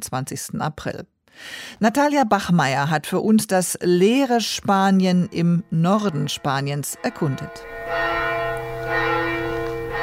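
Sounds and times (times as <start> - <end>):
speech: 0.0 - 8.0
church bell rung by hand for a village festival in northern Spain: 5.0 - 10.0.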